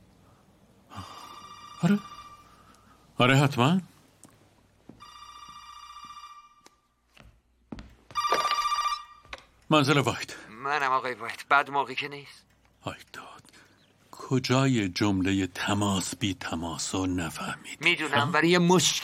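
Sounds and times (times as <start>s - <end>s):
telephone ringing indoors: 0.9s - 2.8s, 5.0s - 6.9s, 8.1s - 9.5s
speech: 1.8s - 2.1s, 3.2s - 3.9s, 9.7s - 13.2s, 14.3s - 19.0s.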